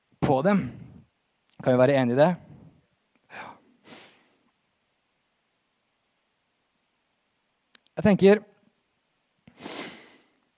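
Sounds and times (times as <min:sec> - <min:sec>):
speech: 0:00.3 - 0:00.8, 0:01.6 - 0:02.4, 0:08.0 - 0:08.5
person sniffling: 0:03.3 - 0:04.4, 0:09.5 - 0:10.4.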